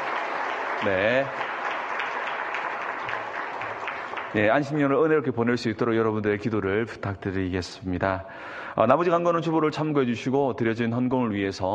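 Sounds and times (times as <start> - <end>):
church congregation applauding during a worship service: 0.0 - 5.3
speech: 0.8 - 1.5, 4.3 - 11.7.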